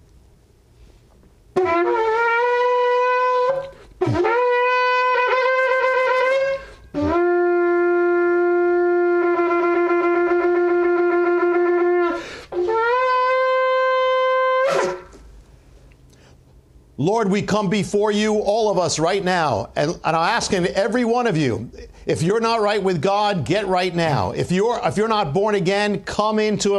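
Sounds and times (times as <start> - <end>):
shofar blown during a prayer gathering: 1.5 - 15.2
speech: 17.2 - 26.7.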